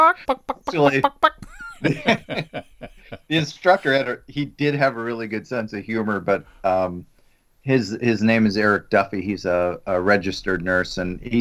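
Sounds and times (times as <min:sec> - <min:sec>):
person imitating chicken clucks: 0:00.0 - 0:01.6
laughter: 0:00.0 - 0:07.0
speech: 0:00.0 - 0:11.3.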